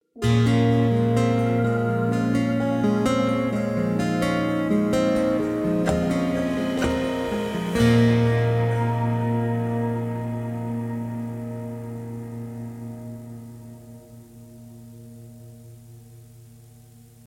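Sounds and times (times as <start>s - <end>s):
sentimental ambient guitar: 0.2s - 17.2s.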